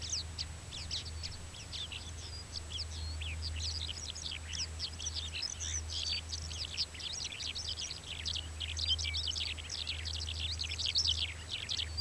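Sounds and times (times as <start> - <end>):
Mongolian lark song, Melanocorypha mongolica: 0.0 - 11.9.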